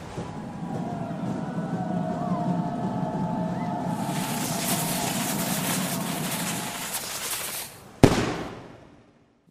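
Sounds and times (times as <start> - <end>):
low rumbling hum: 0.0 - 8.6
loud explosion: 3.9 - 8.8
small lit fuse hissing and sizzling: 4.1 - 7.8.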